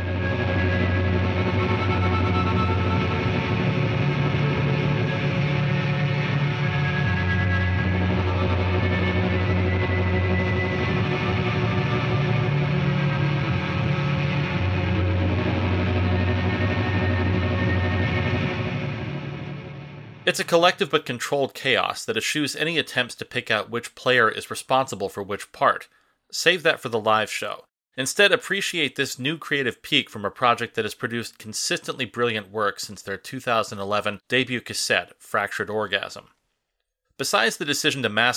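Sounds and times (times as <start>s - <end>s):
guitar feedback and droning noise with reverb and delay: 0.0s - 20.3s
speech: 20.3s - 36.4s, 37.2s - 38.3s.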